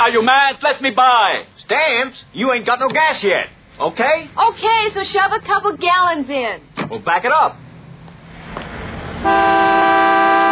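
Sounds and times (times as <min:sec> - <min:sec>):
rumbling street background: 0:00.0 - 0:10.5
speech: 0:00.1 - 0:07.6
car horn honking: 0:09.2 - 0:10.5.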